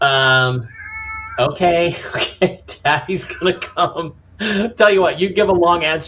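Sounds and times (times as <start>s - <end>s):
female domestic pet cat meowing: 0.1s - 1.9s, 3.0s - 4.0s
laughter: 1.4s - 4.8s
speech: 1.4s - 6.0s.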